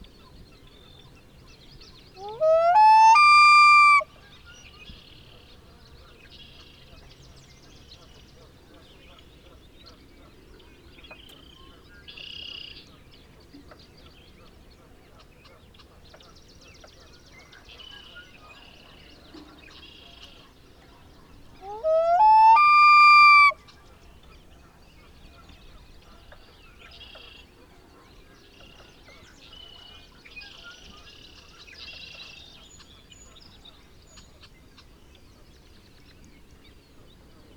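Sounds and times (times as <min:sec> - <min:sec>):
Common Loon Gavia immer calling: 0:02.2 - 0:04.0, 0:21.6 - 0:23.6.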